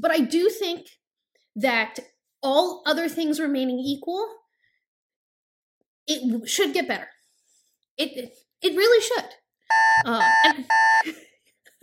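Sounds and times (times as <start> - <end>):
speech: 0.0 - 1.0, 1.6 - 4.4, 6.1 - 7.1, 8.0 - 11.2
loud electronic alarm buzzing: 9.7 - 11.0
vocal-sounding bits: 9.7 - 11.0.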